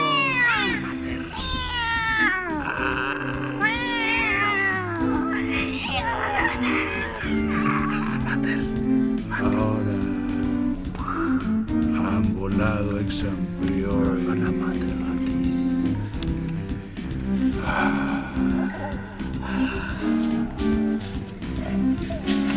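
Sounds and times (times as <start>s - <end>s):
laughter: 0.0s - 1.4s, 2.4s - 11.4s, 17.6s - 20.6s
cat yowling and caterwauling: 0.0s - 8.4s
steady droning musical background: 0.0s - 22.5s.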